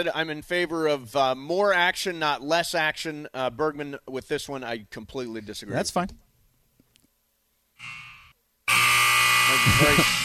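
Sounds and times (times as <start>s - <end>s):
speech: 0.0s - 6.2s, 9.6s - 10.2s
harsh buzzer blasts: 7.8s - 10.2s.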